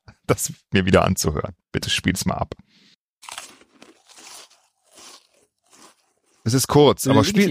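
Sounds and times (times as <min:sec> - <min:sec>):
speech: 0:00.3 - 0:02.6, 0:06.4 - 0:07.4
crisp snacks chewed with an open mouth: 0:03.2 - 0:06.5.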